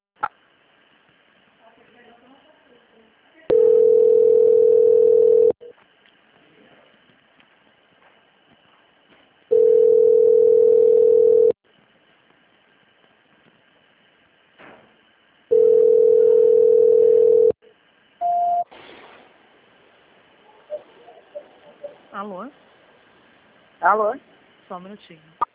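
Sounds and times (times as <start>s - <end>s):
telephone transfer tone beeps: 3.5s - 5.6s, 9.5s - 11.6s, 15.5s - 17.6s, 18.2s - 18.7s
speech: 23.8s - 25.4s.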